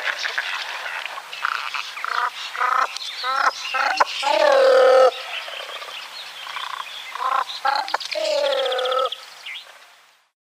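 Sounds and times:
great cormorant croaks: 1.4 - 9.2
great cormorant long nasal gargling call: 2.0 - 5.7, 6.6 - 9.2
speech: 3.2 - 5.0.

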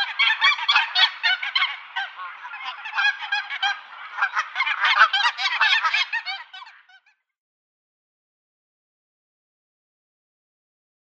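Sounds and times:
flock of Canada geese honking and cackling: 0.0 - 7.1.

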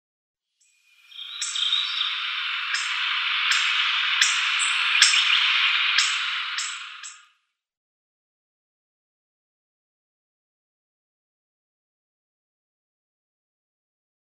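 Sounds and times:
hawfinch call: 1.1 - 7.2.

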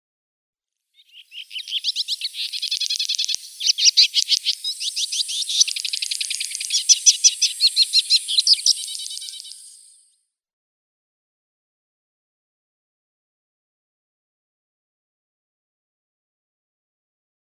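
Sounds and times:
Ethiopian swallow singing: 1.0 - 10.0.

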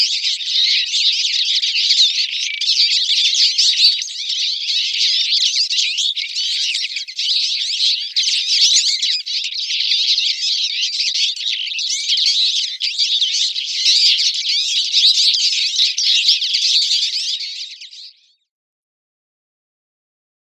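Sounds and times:
twite song: 0.0 - 18.4.

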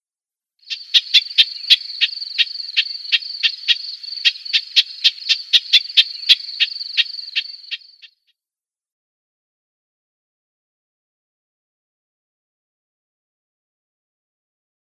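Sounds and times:
Garden Warbler calls: 0.7 - 8.1.

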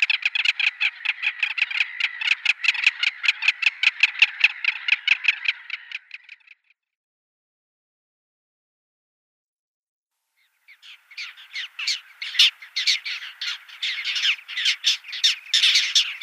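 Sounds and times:
little gull harsh chattering calls: 0.0 - 6.6, 10.6 - 16.2.

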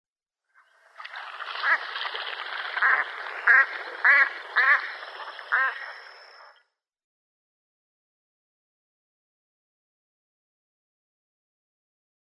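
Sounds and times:
female American Black Duck: 1.6 - 1.9, 2.8 - 6.5.

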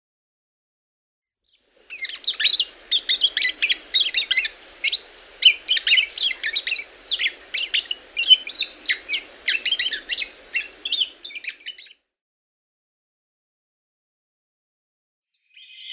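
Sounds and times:
golden oriole subsong: 1.6 - 11.9.

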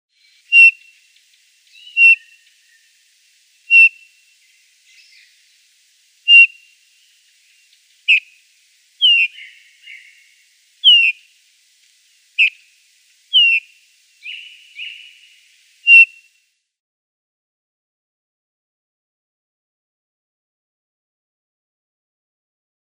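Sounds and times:
Eurasian bullfinch calls: 0.4 - 1.0, 1.7 - 2.6, 3.7 - 4.1, 6.3 - 6.6, 8.1 - 8.3, 9.0 - 11.3, 12.4 - 12.6, 13.3 - 16.2.

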